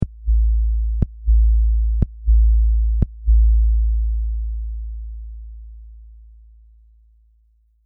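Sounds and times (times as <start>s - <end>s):
sub bass kick drum: 0.0s - 4.4s.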